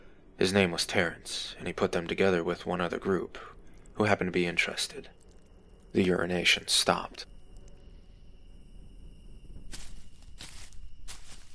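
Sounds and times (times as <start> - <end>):
crickets trilling: 0.0 - 11.5
speech: 0.4 - 5.2, 5.9 - 7.3
heavy footsteps crunching across a campsite: 9.7 - 11.5.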